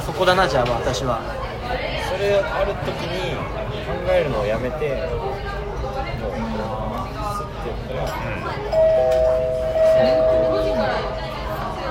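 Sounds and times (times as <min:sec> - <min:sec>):
speech: 0:00.2 - 0:05.5
voices murmuring: 0:01.5 - 0:11.8
voice imitating a correct-answer ding-dong chime: 0:08.8 - 0:11.3.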